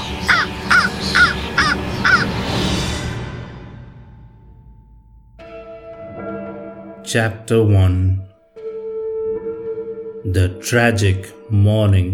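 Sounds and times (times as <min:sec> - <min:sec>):
raven cawing harshly: 0:00.0 - 0:02.6
speech: 0:07.1 - 0:08.3, 0:10.2 - 0:12.1.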